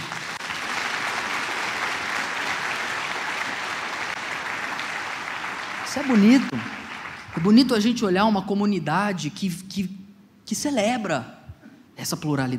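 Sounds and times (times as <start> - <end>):
large crowd applauding: 0.0 - 7.9
speech: 6.0 - 6.8, 7.4 - 11.4, 12.0 - 12.5.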